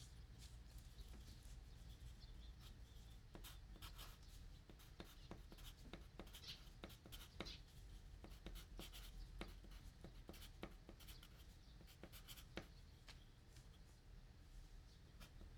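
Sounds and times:
faint low hum: 0:00.0 - 0:15.5
pen scratching on a paper form at a foot care shop: 0:03.3 - 0:12.7.

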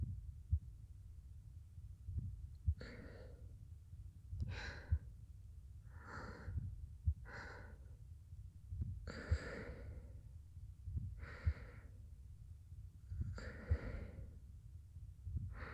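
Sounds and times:
heartbeat: 0:00.0 - 0:00.9, 0:02.0 - 0:03.5, 0:04.3 - 0:05.2, 0:05.9 - 0:08.0, 0:08.6 - 0:10.2, 0:10.8 - 0:12.2, 0:13.0 - 0:14.4, 0:15.1 - 0:15.7
gentle breathing: 0:02.7 - 0:03.5, 0:04.4 - 0:05.1, 0:05.8 - 0:08.0, 0:09.0 - 0:10.3, 0:11.0 - 0:12.1, 0:13.0 - 0:14.5, 0:15.4 - 0:15.7.

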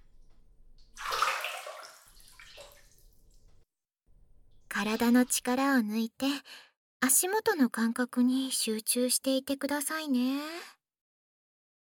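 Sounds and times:
hot water poured over a person's calves: 0:00.9 - 0:03.2
speech: 0:04.8 - 0:10.7.

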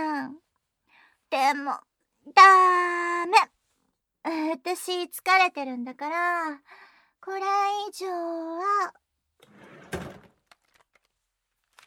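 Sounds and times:
speech: 0:01.3 - 0:03.6, 0:04.2 - 0:09.0
drawer sliding open: 0:09.4 - 0:10.4.

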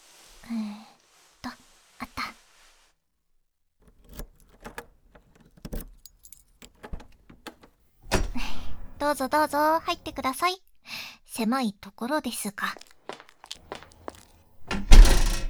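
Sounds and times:
key scraping and clicking in the lock of an apartment door: 0:08.1 - 0:09.0, 0:14.7 - 0:15.4
apartment door lock unlocking with a metallic clunk: 0:08.1 - 0:09.2, 0:14.6 - 0:15.4
speech: 0:09.0 - 0:10.7, 0:11.4 - 0:12.8.

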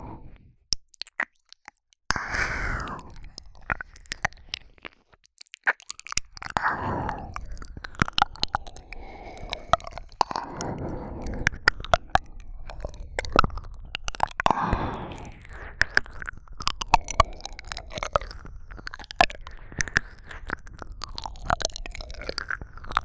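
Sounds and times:
ear licking: 0:00.7 - 0:23.0.

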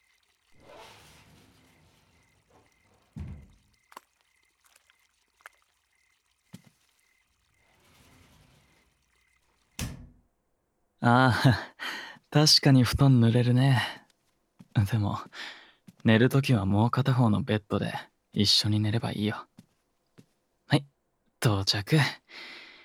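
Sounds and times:
door being opened: 0:00.8 - 0:03.8
speech: 0:11.0 - 0:11.7, 0:12.3 - 0:14.0, 0:14.8 - 0:19.5, 0:20.7 - 0:22.5.

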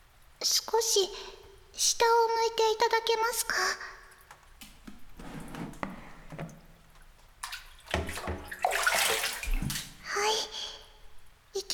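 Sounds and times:
speech: 0:00.4 - 0:04.0
soft squishy water drips: 0:02.5 - 0:11.5
hot running water rinsing a person: 0:03.1 - 0:10.5.

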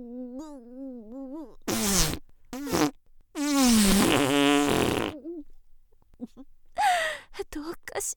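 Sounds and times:
short loud and long sputtering farts: 0:01.7 - 0:05.2.

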